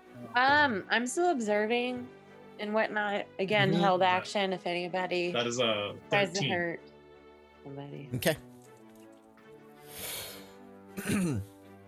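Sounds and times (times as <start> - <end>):
speech: 0.4 - 6.9, 7.6 - 8.5, 11.0 - 11.5
burp halfway between a burp and a hiccup: 11.0 - 11.5.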